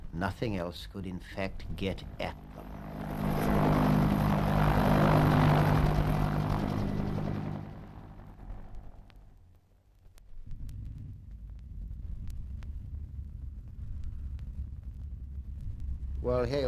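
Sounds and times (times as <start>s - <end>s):
speech: 0.2s - 3.6s, 16.4s - 16.6s
twin piston engines of a Vickers Varsity aeroplane: 1.5s - 9.2s.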